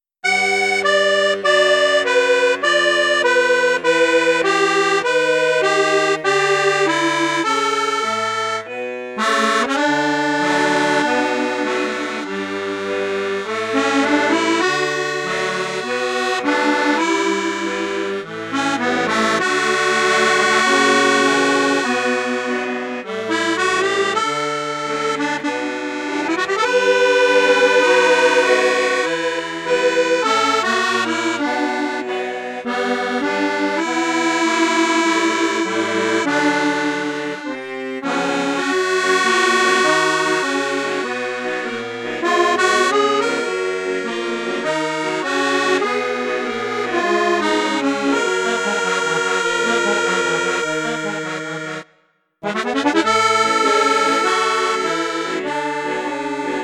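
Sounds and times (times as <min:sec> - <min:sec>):
accordion playing flute, high flute and low flute registers: 0:00.0 - 0:56.6.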